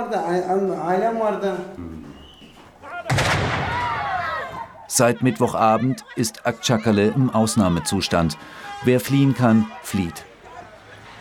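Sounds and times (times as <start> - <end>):
speech: 0.0 - 2.0, 4.9 - 10.3
artillery shell impact: 3.1 - 4.6
laughter: 4.1 - 11.1.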